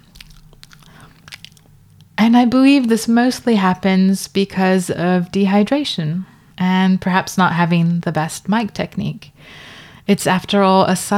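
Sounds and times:
voice imitating wet mouth smacks and pops: 0:00.0 - 0:02.1
speech: 0:02.2 - 0:11.1.

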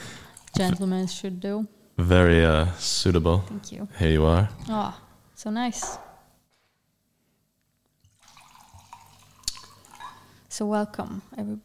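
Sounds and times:
speech: 0:00.6 - 0:06.1, 0:10.6 - 0:11.6
wine splashing and gurgling into a wine glass: 0:08.0 - 0:10.4.

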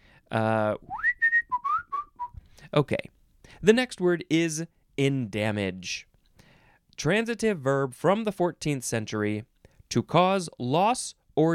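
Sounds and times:
speech: 0:00.3 - 0:01.0, 0:02.7 - 0:06.1, 0:07.0 - 0:11.5
person whistling a short phrase: 0:00.8 - 0:02.4.

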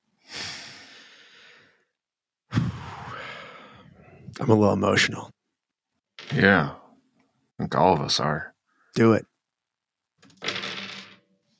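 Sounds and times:
speech: 0:04.4 - 0:05.4, 0:06.3 - 0:06.8, 0:07.6 - 0:09.3
eight-sided dice rattling across a hard tabletop: 0:06.2 - 0:06.8, 0:10.2 - 0:11.4.

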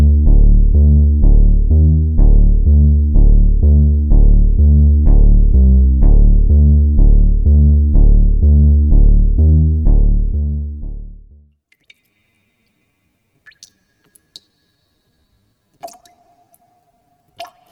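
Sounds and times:
low musical tone: 0:00.0 - 0:11.5
water drops plinking: 0:11.7 - 0:17.7.

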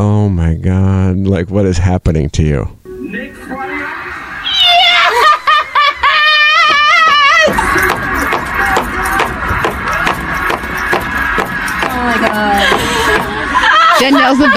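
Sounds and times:
speech: 0:00.0 - 0:03.6, 0:14.0 - 0:14.5
high-pitched shrieking laughter: 0:03.6 - 0:10.0, 0:12.0 - 0:14.5
rapid excited foot stomping: 0:06.5 - 0:13.8.

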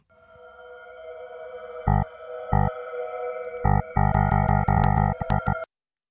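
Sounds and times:
electronic wrong-answer quiz sound effect buzzy synth drone: 0:00.2 - 0:05.6
loud pulsing bursts of wrong-answer quiz sound effect: 0:01.2 - 0:05.6.

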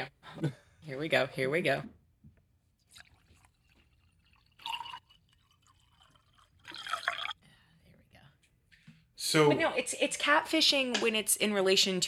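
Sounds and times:
speech: 0:00.4 - 0:02.0, 0:09.3 - 0:12.0
wine pouring into a glass: 0:02.8 - 0:07.4.

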